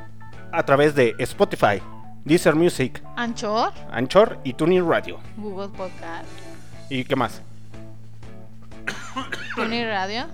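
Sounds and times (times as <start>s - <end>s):
speech: 0.5s - 7.5s, 9.2s - 10.3s
raspy throat-clearing: 8.8s - 9.8s
person coughing fit with hacking coughs: 8.9s - 10.0s.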